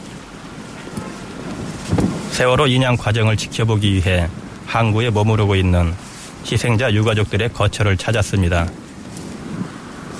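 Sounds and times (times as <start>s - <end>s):
sea wind blowing across the open harbor of Mokpo New Port: 0.0s - 10.1s
speech: 2.4s - 8.8s.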